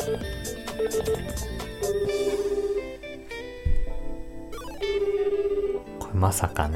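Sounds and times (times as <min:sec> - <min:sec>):
phone ringback synthesized melody: 0:00.0 - 0:03.5, 0:04.5 - 0:06.0
speech: 0:00.1 - 0:02.5, 0:06.2 - 0:06.7.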